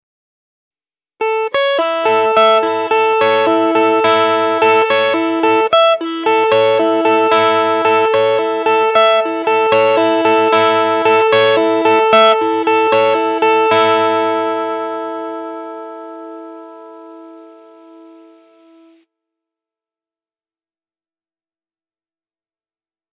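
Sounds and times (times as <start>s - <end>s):
arpeggio: 1.2s - 19.0s.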